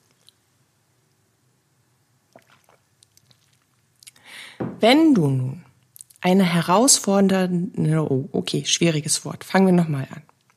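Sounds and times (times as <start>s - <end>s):
tea being sipped from a cup: 2.3s - 4.6s
speech: 4.8s - 5.6s, 6.2s - 10.3s.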